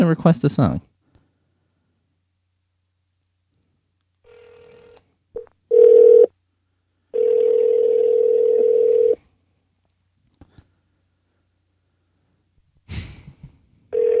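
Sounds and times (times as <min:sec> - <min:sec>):
ringback tone of a phone call: 0:04.3 - 0:06.3, 0:07.1 - 0:09.2, 0:13.9 - 0:14.1.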